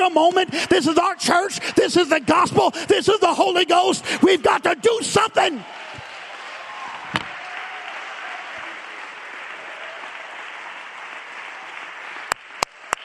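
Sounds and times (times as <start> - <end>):
speech: 0.0 - 5.8
audience clapping: 0.0 - 13.0.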